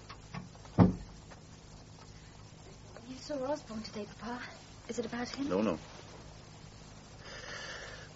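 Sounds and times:
faint rustle: 0:00.1 - 0:07.2
door shutting with a dull solid thud: 0:00.3 - 0:01.2
speech: 0:03.3 - 0:06.0.

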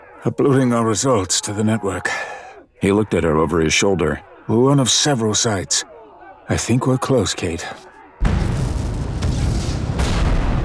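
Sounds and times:
speech: 0:00.2 - 0:05.9, 0:06.5 - 0:08.3
booming gunfire from fighting in a camp: 0:08.2 - 0:10.6
loud explosions from fighting in a camp: 0:08.2 - 0:10.6.

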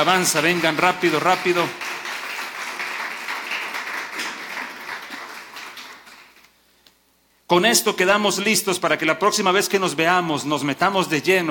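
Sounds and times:
speech: 0:00.0 - 0:01.8, 0:07.5 - 0:11.5
audience applauding the Lord: 0:00.0 - 0:06.5.

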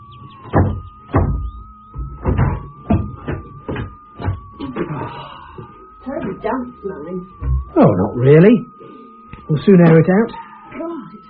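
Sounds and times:
swollen wooden door being forced open: 0:00.4 - 0:04.7
faint steady whine: 0:00.9 - 0:11.2
speech: 0:06.4 - 0:08.7, 0:09.5 - 0:10.4.

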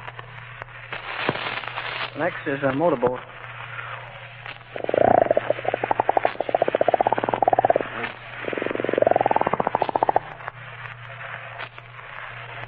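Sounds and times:
speech: 0:02.4 - 0:03.4
voice imitating radio static and tuning: 0:04.6 - 0:10.4.

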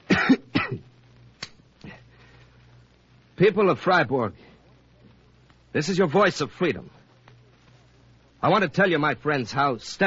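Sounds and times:
man coughing: 0:00.1 - 0:00.8
speech: 0:03.4 - 0:04.5, 0:05.7 - 0:07.0, 0:08.4 - 0:10.0.

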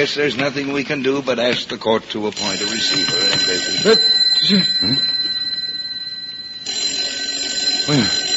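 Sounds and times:
speech: 0:00.0 - 0:05.2
desk telephone bell ringing with a metallic trill: 0:02.4 - 0:08.3.

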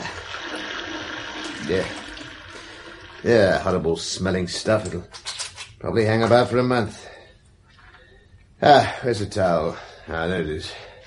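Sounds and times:
water running from a tap while washing liniment off hands: 0:00.0 - 0:04.2
speech: 0:01.7 - 0:02.0, 0:03.2 - 0:05.2, 0:05.8 - 0:07.1, 0:08.6 - 0:10.9.

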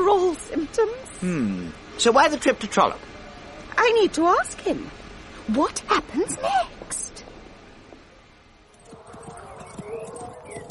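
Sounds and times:
soft outdoor ambience: 0:00.0 - 0:10.7
speech: 0:00.8 - 0:03.1, 0:03.8 - 0:06.8
horse hooves clip-clopping: 0:08.7 - 0:10.7.

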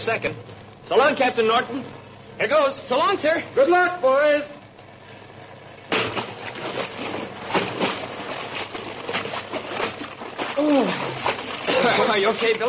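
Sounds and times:
speech: 0:00.0 - 0:04.6, 0:10.6 - 0:11.2, 0:11.8 - 0:12.6
body splashing into water after dive: 0:06.0 - 0:12.6
vocal cry: 0:10.6 - 0:11.3.

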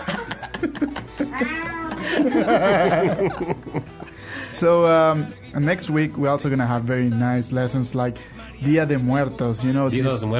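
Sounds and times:
faint laughter: 0:00.0 - 0:04.1
speech: 0:00.6 - 0:10.3
cat meowing in a studio: 0:01.3 - 0:02.0.

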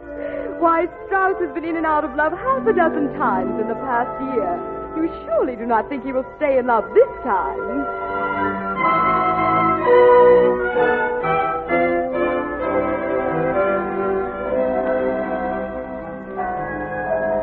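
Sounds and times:
full peal of wedding church bells ringing: 0:00.0 - 0:17.4
speech: 0:00.6 - 0:08.1.

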